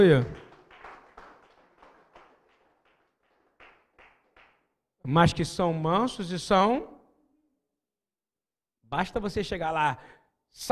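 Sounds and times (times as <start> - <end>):
speech: 0.0 - 0.4, 5.0 - 6.9, 8.9 - 10.7
audience clapping in a steady rhythm: 0.0 - 4.8.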